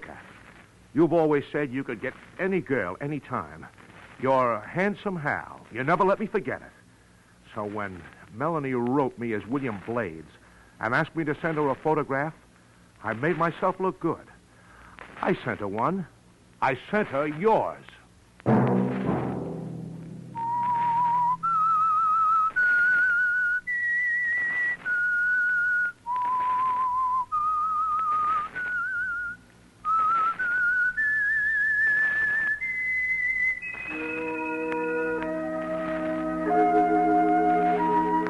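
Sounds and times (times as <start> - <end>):
speech: 1.0 - 6.8, 7.5 - 12.4, 13.0 - 14.3, 15.2 - 18.7
low orchestral backing: 18.5 - 21.6, 33.8 - 38.2
whistled theme melody: 20.3 - 38.2.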